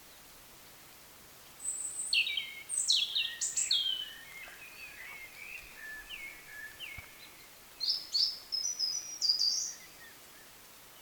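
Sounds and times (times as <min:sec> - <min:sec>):
European robin singing: 0:01.6 - 0:10.2.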